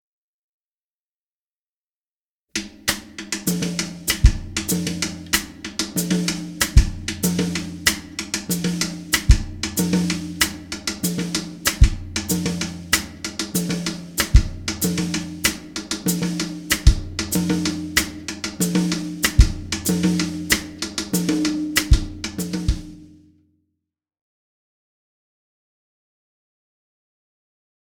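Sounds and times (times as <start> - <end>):
cascara percussion groove: 2.6 - 23.2.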